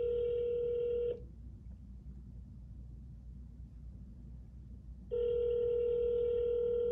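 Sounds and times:
electronic phone ringback tone: 0.0s - 1.2s, 5.1s - 6.9s.

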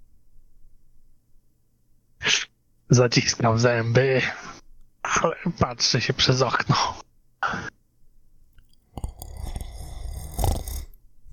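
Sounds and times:
speech: 2.9s - 7.7s
old man snoring with sharp snorts and rattling snores: 9.0s - 11.3s.

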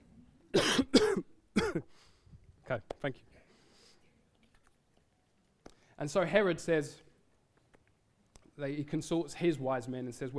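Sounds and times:
person coughing: 0.5s - 1.9s
speech: 2.7s - 3.3s, 6.0s - 7.1s, 8.6s - 10.3s.

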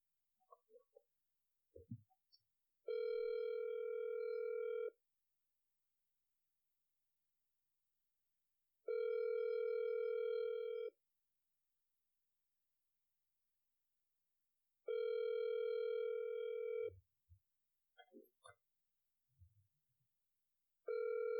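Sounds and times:
phone ringback tone before voicemail: 2.9s - 4.9s, 8.9s - 10.9s, 14.9s - 16.9s, 20.9s - 21.3s.

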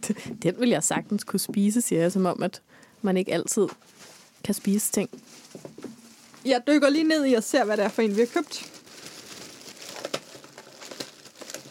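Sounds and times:
speech: 0.1s - 5.7s, 6.4s - 8.8s
plastic bag crinkling: 4.0s - 11.6s.

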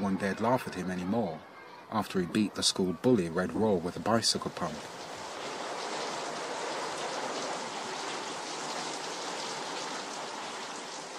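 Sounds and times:
speech: 0.1s - 5.1s
heavy tropical rain falling on zinc roofs: 3.9s - 11.1s.

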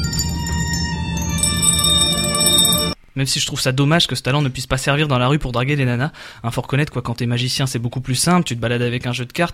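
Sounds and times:
bells ringing together: 0.0s - 3.0s
speech: 3.2s - 9.5s.

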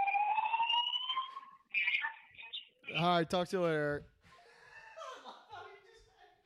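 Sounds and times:
fire alarm blaring with a steady piercing electronic tone: 0.0s - 3.1s
speech: 2.9s - 4.1s
laughter: 4.4s - 6.3s.

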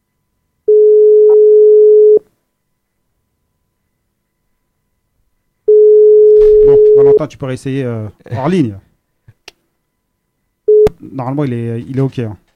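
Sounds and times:
ringback tone of a phone ringing unanswered on a live call: 0.7s - 2.2s, 5.7s - 7.2s, 10.7s - 10.9s
speech: 7.2s - 8.9s, 11.0s - 12.4s.

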